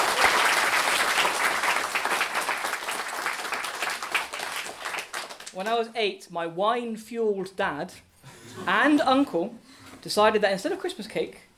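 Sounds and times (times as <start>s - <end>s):
audience applause: 0.0s - 5.6s
speech: 5.6s - 11.5s.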